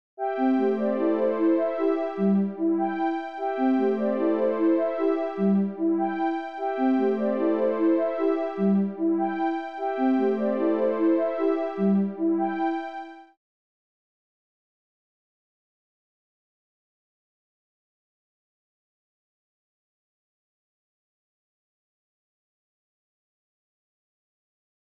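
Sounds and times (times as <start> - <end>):
chiptune song made in a web synth: 0.3 - 13.2.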